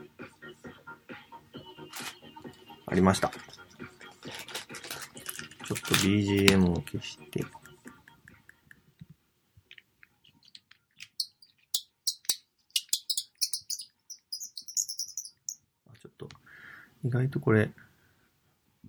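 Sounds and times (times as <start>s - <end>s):
speech: 2.9s - 3.6s, 5.9s - 7.6s, 17.1s - 17.8s
repainted wooden bird call with metal, turned to squeak chirps and trills mimicking birdsong: 10.4s - 15.6s.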